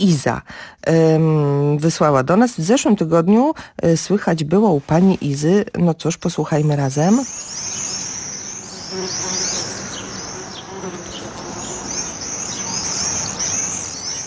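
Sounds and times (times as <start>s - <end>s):
speech: 0.0s - 7.8s
Common Swifts giving high shrill screaming calls: 6.9s - 14.2s
bumblebee buzzing: 7.0s - 14.2s.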